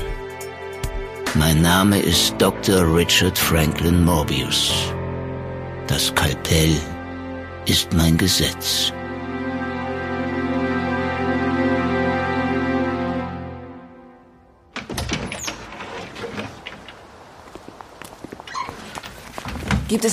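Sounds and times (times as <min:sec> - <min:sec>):
speech: 0:01.4 - 0:05.0, 0:05.9 - 0:07.0, 0:07.6 - 0:09.0, 0:19.9 - 0:20.1
sustained droning musical chord: 0:02.0 - 0:14.7
door clunking shut: 0:14.7 - 0:17.2
wooden door opening with a sharp knock: 0:14.7 - 0:17.4, 0:18.5 - 0:20.0
scuffing footsteps: 0:16.7 - 0:20.1.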